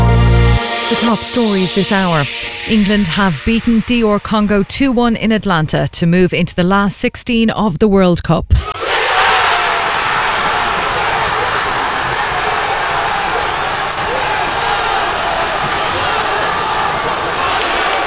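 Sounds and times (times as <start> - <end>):
speech: 0.9 - 9.0
crowd of football supporters in Manchester cheering a winning goal: 8.6 - 18.0.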